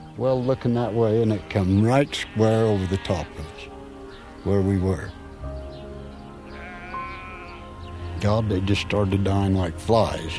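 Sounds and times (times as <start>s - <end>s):
speech: 0.2s - 3.7s, 4.4s - 5.2s, 8.2s - 10.3s
sheep bleating: 0.6s - 3.7s, 6.4s - 10.3s.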